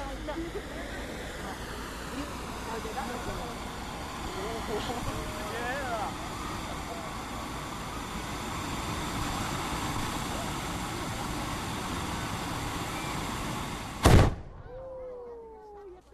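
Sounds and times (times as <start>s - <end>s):
hand-held tube fireworks roaring hiss: 0.0s - 14.5s
hand-held tube firework booming burst: 13.9s - 14.7s.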